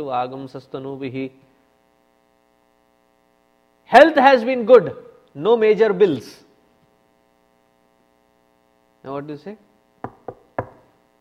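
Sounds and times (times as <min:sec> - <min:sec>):
speech: 0:00.0 - 0:01.5, 0:03.9 - 0:06.4, 0:09.0 - 0:09.7
knocking on a wooden surface: 0:10.0 - 0:10.9.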